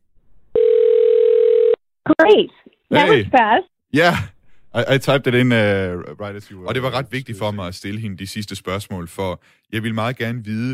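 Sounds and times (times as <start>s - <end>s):
electronic ringback tone as a phone call is placed: 0.6s - 1.8s
speech: 2.1s - 10.7s.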